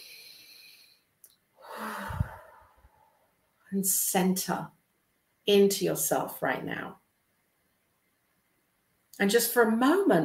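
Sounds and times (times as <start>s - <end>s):
deep breath during a guided prayer meditation: 0.0s - 3.4s
speech: 3.7s - 4.8s, 5.5s - 7.0s, 9.2s - 10.2s.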